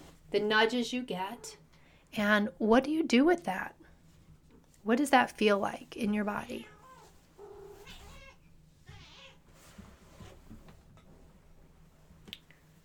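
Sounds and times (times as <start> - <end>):
low steady hum: 0.0 - 12.8
speech: 0.3 - 3.8, 4.8 - 6.7
soft rustling: 3.8 - 12.8
female cat meowing: 6.6 - 9.4.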